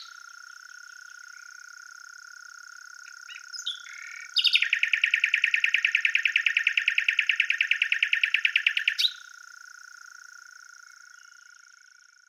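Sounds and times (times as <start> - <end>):
common nightingale Luscinia megarhynchos singing: 0.0 - 1.7, 3.0 - 9.4, 10.6 - 12.2.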